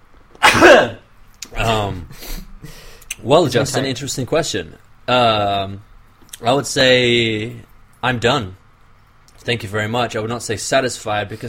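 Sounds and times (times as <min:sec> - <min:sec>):
person sneezing: 0:00.4 - 0:01.0
speech: 0:01.7 - 0:02.4, 0:03.2 - 0:08.6, 0:09.4 - 0:11.4.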